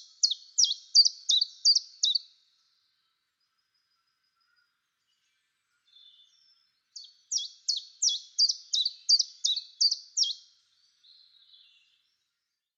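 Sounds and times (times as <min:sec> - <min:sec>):
Common chiffchaff singing high sharp notes: 0:00.0 - 0:02.2, 0:06.0 - 0:10.5.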